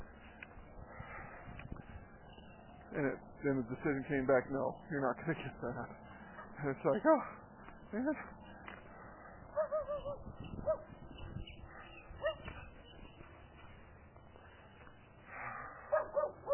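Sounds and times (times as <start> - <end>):
speech: 3.0 - 8.4
dog barking and whimpering: 9.5 - 10.9, 15.9 - 16.5.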